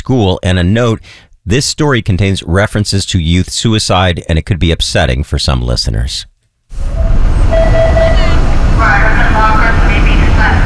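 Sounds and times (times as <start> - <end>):
speech: 0.1 - 7.3
yellow school buses idling outside a red brick middle school: 6.7 - 10.6.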